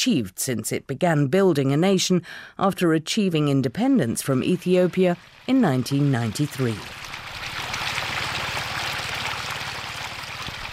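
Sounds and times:
speech: 0:00.0 - 0:07.0
water running through a small irrigation channel in Eritrea: 0:04.4 - 0:10.7.

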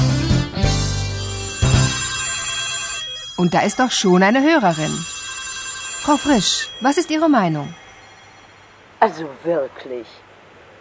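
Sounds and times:
telephone ringing with buzzy tone: 0:01.0 - 0:09.0
speech: 0:03.4 - 0:05.2, 0:06.0 - 0:07.8, 0:09.0 - 0:10.2.

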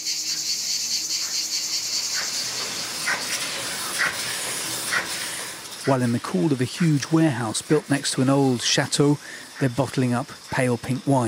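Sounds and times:
cicadas singing: 0:00.0 - 0:11.2
speech: 0:05.8 - 0:11.2.

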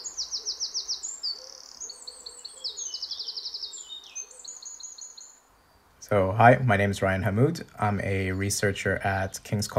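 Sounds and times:
bright high birdsong of several birds: 0:00.0 - 0:09.7
speech: 0:06.1 - 0:09.7.

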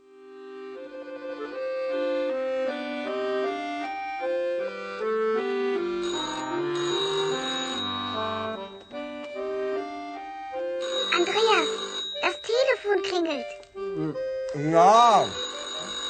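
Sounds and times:
soft melodic music at home during a meal: 0:00.0 - 0:16.0
telephone ringing in warbling bursts: 0:05.8 - 0:13.5, 0:14.9 - 0:16.0.

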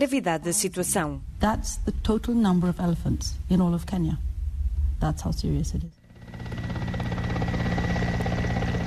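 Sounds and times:
speech: 0:00.0 - 0:04.3, 0:05.0 - 0:06.6
helicopter rotor chopping over engine whine: 0:06.0 - 0:08.8.

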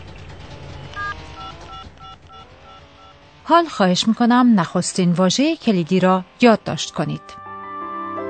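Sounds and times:
touch-tone beeps of a phone number dialed on a keypad: 0:01.0 - 0:03.1
speech: 0:03.5 - 0:07.4.

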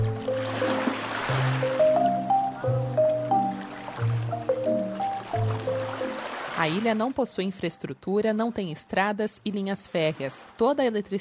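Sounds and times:
instrumental melody stepping through sustained notes: 0:00.0 - 0:07.0
ocean waves washing softly on a beach: 0:00.0 - 0:07.4, 0:09.8 - 0:10.6
speech: 0:06.6 - 0:11.1.

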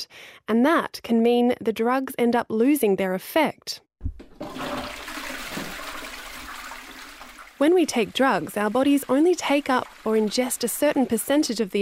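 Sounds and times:
speech: 0:00.0 - 0:04.9, 0:07.6 - 0:11.7
toilet flushing: 0:04.2 - 0:11.7.

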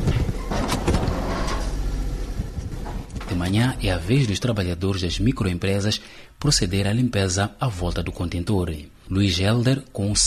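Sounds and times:
garbage truck hydraulic whooshes: 0:00.0 - 0:03.2
heavy garbage collection truck engine running at night: 0:00.0 - 0:03.2
garbage truck mechanical clanks: 0:00.0 - 0:03.5
speech: 0:03.4 - 0:10.2.

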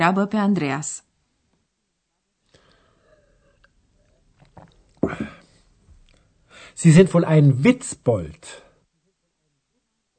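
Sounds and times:
speech: 0:00.0 - 0:01.1, 0:05.1 - 0:05.3, 0:06.8 - 0:08.6
breathy exhale: 0:02.5 - 0:03.6, 0:06.5 - 0:06.8
person sipping beer from a glass: 0:02.5 - 0:06.2
loud throaty gulp of beer: 0:04.4 - 0:05.5.

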